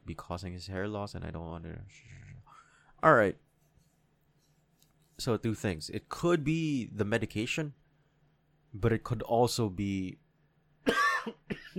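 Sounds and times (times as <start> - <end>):
speech: 0.2 - 2.2, 3.0 - 3.5, 5.2 - 7.8, 8.7 - 10.2, 10.8 - 11.7
harsh rasping coughs: 10.8 - 11.7.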